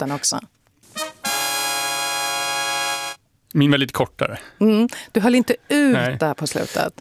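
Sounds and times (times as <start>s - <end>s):
speech: 0.0s - 0.5s, 3.5s - 7.0s
brassy horn blast of a radio traffic alert jingle: 0.9s - 3.2s
lead-in note: 1.0s - 3.2s.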